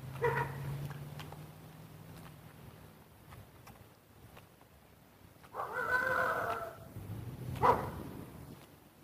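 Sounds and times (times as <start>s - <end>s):
single short dog bark outdoors: 0.1s - 0.7s, 5.5s - 6.9s, 7.6s - 8.0s
dog howl-like call outdoors: 5.5s - 6.9s.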